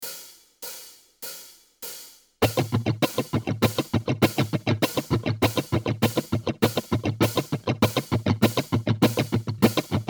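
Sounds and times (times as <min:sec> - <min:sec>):
strumming: 0:02.4 - 0:10.0.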